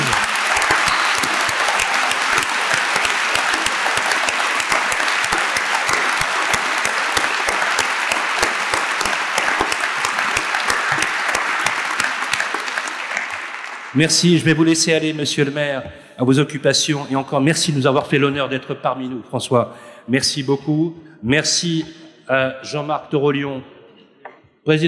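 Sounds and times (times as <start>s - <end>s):
large audience applauding: 0.0s - 14.7s
speech: 14.0s - 23.7s, 24.6s - 24.8s.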